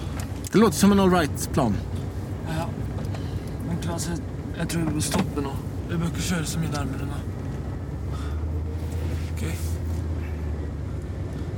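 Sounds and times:
car engine drone: 0.0 - 11.5
road rumble: 0.0 - 11.5
speech: 0.5 - 2.0, 3.9 - 7.3, 9.4 - 9.6.

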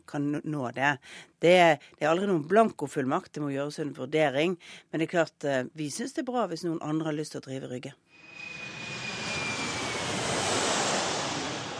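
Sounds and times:
speech: 0.1 - 8.3
jet airplane roaring as it takes off: 8.1 - 11.7
thin high whine gliding downward: 8.2 - 11.7.

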